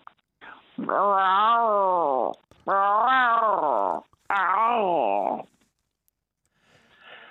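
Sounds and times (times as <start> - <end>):
person imitating a tomcat's yowl: 0.8 - 5.5.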